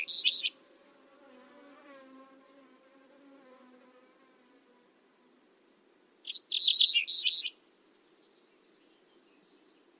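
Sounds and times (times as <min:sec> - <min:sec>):
bird giving rapid high twittering chirps: 0:00.0 - 0:00.6, 0:06.2 - 0:09.9.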